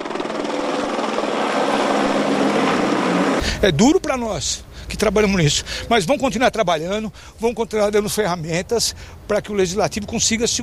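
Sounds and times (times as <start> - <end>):
police helicopter flying overhead with rotor chop and engine roar: 0.0 - 3.4
speech: 3.6 - 10.6.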